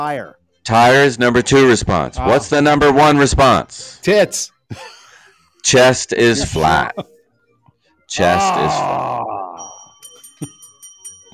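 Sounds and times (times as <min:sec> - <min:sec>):
speech: 0:00.0 - 0:05.0, 0:05.6 - 0:07.1, 0:08.1 - 0:09.4
bell rung during a fill-in-the-blank guessing game: 0:09.5 - 0:11.3.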